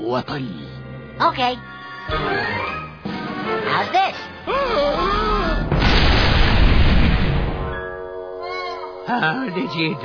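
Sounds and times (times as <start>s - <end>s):
speech: 0.0s - 2.8s, 3.6s - 5.3s, 9.1s - 10.0s
comedy cannon boom: 5.6s - 7.8s.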